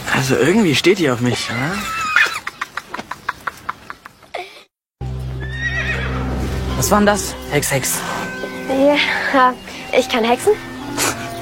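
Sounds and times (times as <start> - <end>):
speech: 0.2 - 2.1, 6.8 - 10.7
low steady hum: 5.0 - 9.0
horse neighing: 5.4 - 6.3.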